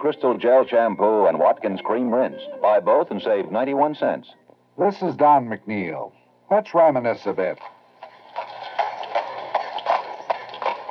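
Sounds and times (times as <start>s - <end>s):
speech: 0.0s - 7.8s
horse hooves clip-clopping as a milkman delivers milk bottles: 7.6s - 10.8s.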